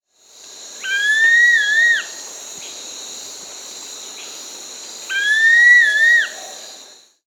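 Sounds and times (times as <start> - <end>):
Rufous-tailed Flatbill Ramphotrigon ruficauda in Peru: 0.8 - 2.2, 5.1 - 6.7.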